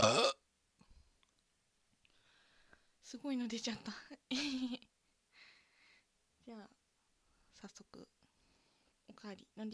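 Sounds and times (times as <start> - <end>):
burp: 0.0 - 0.4
speech: 3.1 - 4.9, 6.5 - 6.8, 7.6 - 8.2, 9.1 - 9.7.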